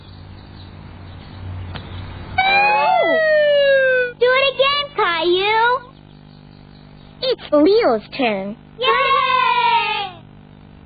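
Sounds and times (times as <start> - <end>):
low engine rumble: 0.0 - 10.8
fire truck siren wailing: 2.4 - 4.2
speech: 7.5 - 9.0.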